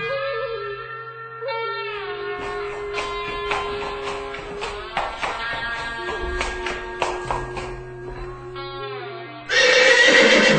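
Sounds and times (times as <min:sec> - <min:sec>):
tapping hits: 0:02.4 - 0:08.6
white horse whinnying: 0:09.5 - 0:10.5.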